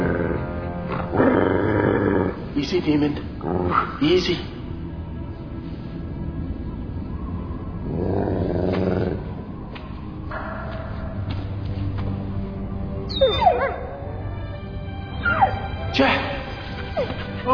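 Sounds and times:
low rumbling background: 0.0s - 17.5s
speech: 2.6s - 4.5s
dog whimpering and whining with rising yips: 13.1s - 13.9s, 15.2s - 15.8s, 16.7s - 17.5s.

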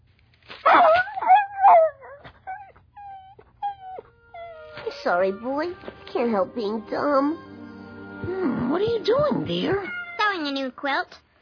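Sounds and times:
dog yelping and whining after its chain is pulled during sit training: 0.7s - 4.9s
speech: 5.0s - 7.5s, 8.7s - 11.2s.

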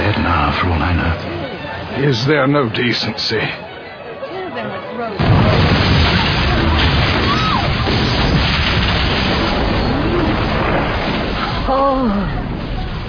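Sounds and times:
speech: 0.1s - 1.3s, 2.0s - 3.6s, 11.7s - 12.4s
fireworks exploding: 5.2s - 13.0s.

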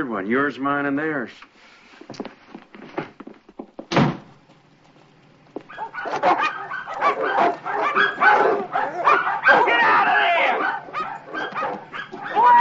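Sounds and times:
speech: 0.0s - 2.4s
heavy thud: 3.9s - 4.3s
dog barking: 5.7s - 12.5s.

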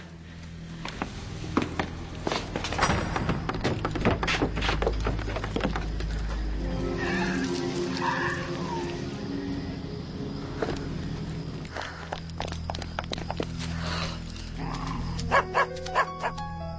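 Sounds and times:
low rumbling hum: 0.0s - 15.2s
clattering knocks: 2.6s - 6.0s
dog barking: 15.3s - 16.1s.

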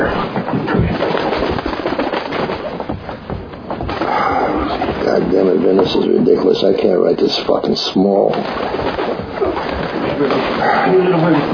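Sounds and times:
bird fluttering and scuffling as someone tries to catch it: 0.0s - 5.2s, 7.9s - 11.5s
speech: 5.2s - 9.2s, 10.2s - 11.5s.

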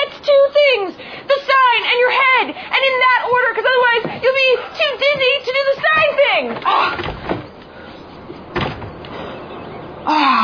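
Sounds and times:
steady hum: 0.0s - 10.4s
door closing shut: 6.0s - 7.7s, 8.3s - 9.2s.

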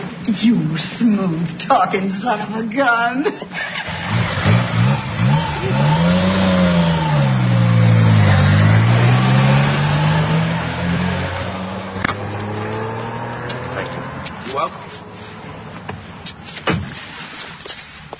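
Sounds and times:
speech: 0.3s - 4.4s
motorcycle engine revving: 3.6s - 15.2s.

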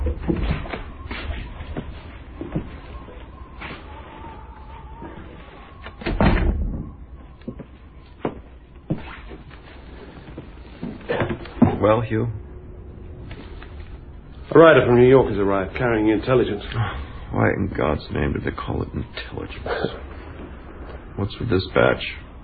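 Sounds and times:
low room rumble: 0.0s - 22.4s
door opening and shutting: 5.8s - 7.0s
heavy thud: 6.1s - 6.9s
speech: 11.8s - 12.4s, 14.6s - 20.1s, 21.2s - 22.2s.

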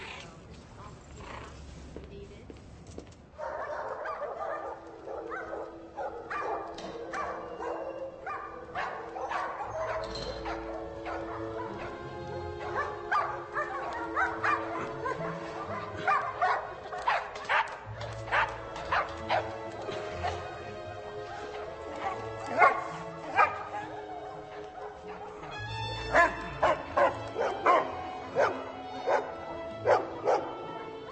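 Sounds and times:
dog barking and yipping: 3.4s - 12.0s, 12.6s - 19.5s, 22.0s - 24.0s, 24.8s - 30.5s.

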